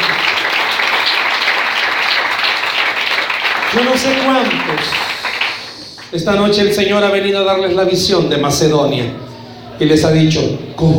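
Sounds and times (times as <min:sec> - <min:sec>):
audience applauding: 0:00.0 - 0:06.9
speech: 0:03.7 - 0:05.1, 0:06.1 - 0:09.2, 0:09.8 - 0:10.9.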